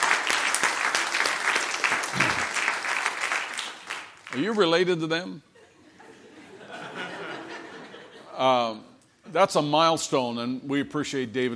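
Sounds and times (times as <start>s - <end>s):
room full of people applauding: 0.0s - 4.8s
speech: 4.3s - 5.5s, 8.4s - 11.5s
laughter: 5.6s - 8.6s.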